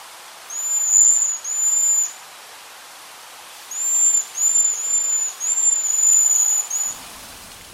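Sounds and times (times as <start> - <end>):
faint hiss: 0.0 - 7.7
fruit-eating bird's thin high sighing whistle call: 0.5 - 2.1, 3.7 - 7.0.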